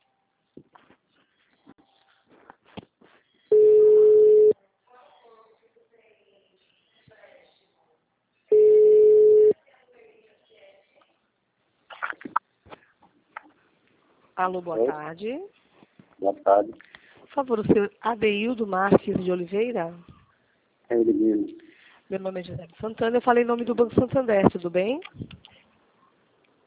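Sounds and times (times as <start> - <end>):
phone line ringback tone: 3.5 - 4.5, 8.5 - 9.5
speech: 14.4 - 15.6, 16.2 - 20.1, 20.9 - 25.3.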